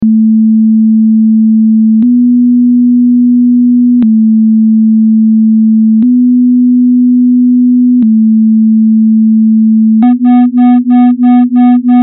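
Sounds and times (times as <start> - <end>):
small and large whole tone intervals: 0.0 - 12.0.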